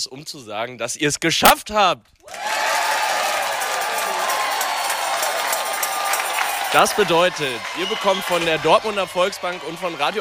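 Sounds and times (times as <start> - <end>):
speech: 0.0 - 2.5, 6.7 - 10.1
crowd cheering: 2.2 - 10.1.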